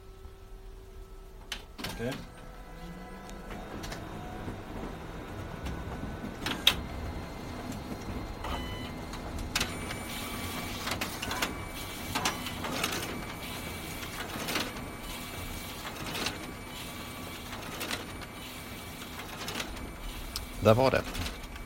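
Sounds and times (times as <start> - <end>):
combined printer and photocopier whirring at a library: 0.1 - 21.6
speech: 2.0 - 2.4, 20.7 - 21.3
mechanical clacks and thumps as sheets of paper are fed through: 3.3 - 21.6.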